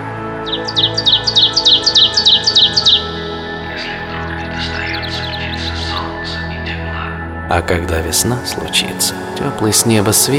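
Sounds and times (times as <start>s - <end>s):
small bird chirping: 0.4s - 6.7s
speech: 0.5s - 1.1s, 7.5s - 10.3s.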